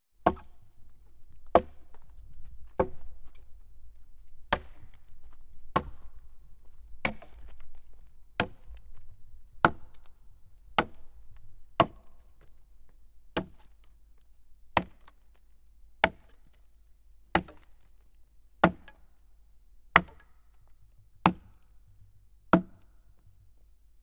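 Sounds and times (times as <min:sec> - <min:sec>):
axe chopping: 0:00.2 - 0:00.7, 0:01.5 - 0:02.0, 0:02.8 - 0:03.1, 0:04.5 - 0:05.1, 0:05.7 - 0:06.2, 0:07.0 - 0:08.8, 0:09.6 - 0:11.2, 0:11.8 - 0:12.5, 0:13.4 - 0:13.8, 0:14.8 - 0:15.1, 0:16.0 - 0:16.4, 0:17.4 - 0:17.8, 0:18.6 - 0:19.0, 0:20.0 - 0:20.3, 0:21.3 - 0:21.6, 0:22.6 - 0:22.8.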